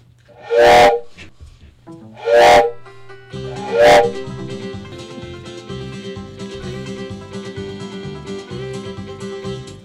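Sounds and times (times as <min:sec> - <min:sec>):
loud short train whistle blasts: 0:00.4 - 0:01.3, 0:02.2 - 0:04.4
steady instrumental music: 0:01.8 - 0:09.8.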